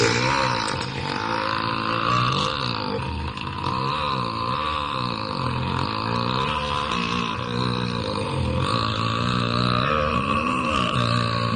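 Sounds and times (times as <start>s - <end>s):
long loud burp: 0.0s - 11.5s.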